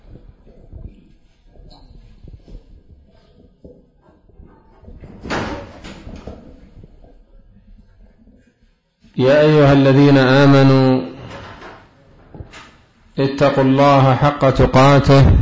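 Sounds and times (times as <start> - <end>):
low room noise: 0.0 - 15.4
door opening with a scraping clatter: 4.8 - 6.9, 10.8 - 12.9
speech: 9.2 - 11.0, 13.3 - 15.4.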